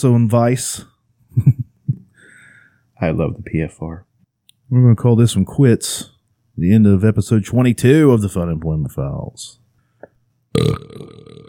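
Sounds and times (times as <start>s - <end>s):
speech: 0.0s - 1.6s, 3.0s - 4.1s, 4.7s - 9.6s, 10.5s - 11.4s
loud drawn-out belch: 10.5s - 11.4s.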